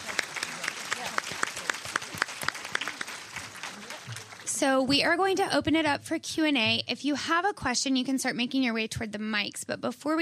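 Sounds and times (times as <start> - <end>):
audience applauding a panel: 0.0 - 4.8
speech: 4.6 - 10.2.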